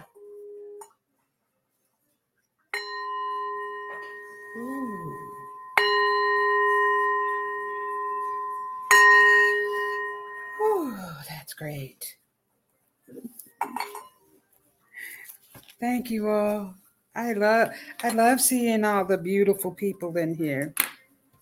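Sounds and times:
bells struck with long shimmering sustain: 2.8 - 10.9
speech: 11.5 - 12.2, 15.8 - 20.8.

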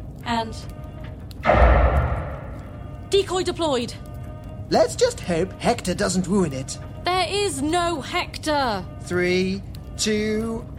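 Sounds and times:
speech: 0.3 - 0.8, 3.2 - 4.1, 4.7 - 10.7
heavy mechanical thud of laser cannons detaching with metallic ring: 1.5 - 2.9.

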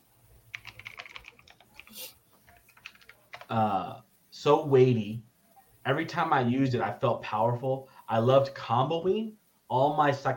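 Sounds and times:
typing on a computer keyboard: 0.5 - 3.6
speech: 3.5 - 10.3.

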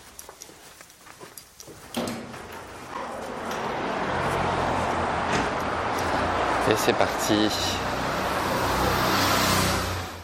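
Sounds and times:
car driving along the road from Paris with engine hum and tyre noise: 2.4 - 10.2
speech: 6.7 - 7.9.

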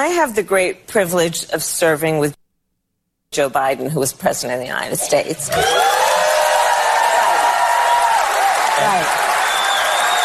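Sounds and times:
speech: 0.0 - 2.4, 3.3 - 6.0, 8.8 - 9.2
large audience applauding: 5.5 - 10.2
scattered cheers and whoops: 5.5 - 10.2.

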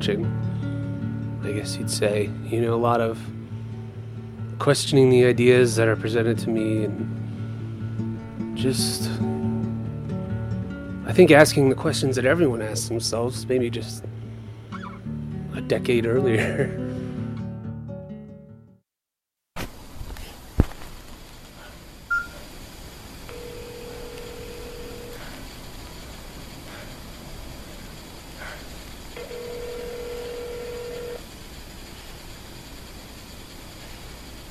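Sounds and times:
speech: 0.0 - 0.6, 1.4 - 3.4, 4.6 - 7.2, 8.6 - 9.3, 11.1 - 14.1, 15.6 - 16.8
steady hiss of telephone line noise: 0.0 - 16.2, 19.6 - 34.4
music: 0.0 - 18.8
laughter: 16.1 - 16.8
telephone keypad dialing tones: 22.1 - 22.4, 23.3 - 25.2, 29.2 - 31.2.

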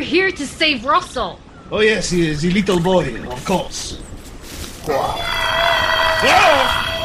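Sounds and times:
speech: 0.0 - 4.1, 4.8 - 6.8
large bird making a loud warbling call: 1.4 - 7.0.

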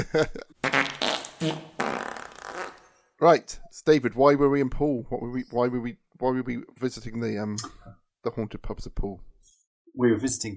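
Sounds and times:
speech: 0.0 - 0.5, 1.4 - 1.7, 3.2 - 9.3, 10.0 - 10.5
raspy sputtering fart sound effect: 0.6 - 3.0.

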